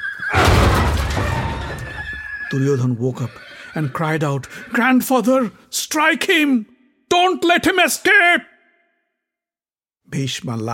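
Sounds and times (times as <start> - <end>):
horse neighing: 1.2 - 5.0
speech: 2.5 - 8.5, 10.1 - 10.7.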